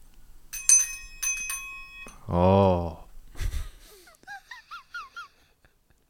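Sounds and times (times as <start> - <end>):
bright metallic bell ringing: 0.5 - 2.4
speech: 2.3 - 3.0.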